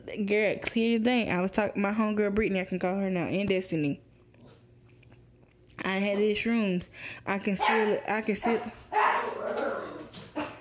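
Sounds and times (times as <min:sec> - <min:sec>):
speech: 0:00.2 - 0:04.0, 0:05.8 - 0:08.8
dog giving a whiny bark and sharp yips: 0:07.6 - 0:10.5.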